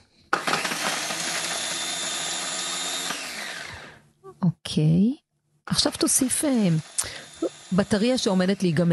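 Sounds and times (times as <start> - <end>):
blender running: 0.3 - 4.0, 6.1 - 8.9
speech: 4.4 - 8.9.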